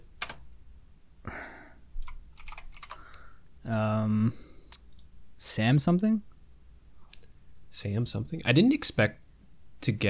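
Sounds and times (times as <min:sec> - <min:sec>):
typing on a clicky computer keyboard: 0:02.0 - 0:03.1
speech: 0:03.7 - 0:04.5, 0:05.4 - 0:06.3, 0:07.8 - 0:09.2, 0:09.8 - 0:10.0.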